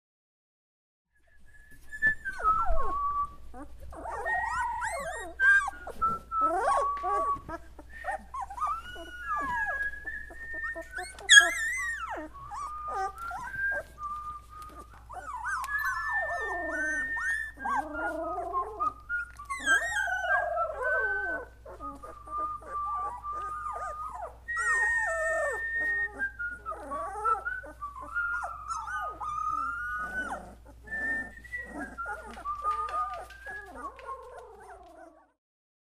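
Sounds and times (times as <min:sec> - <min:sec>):
puppies singing: 0:02.3 - 0:35.3.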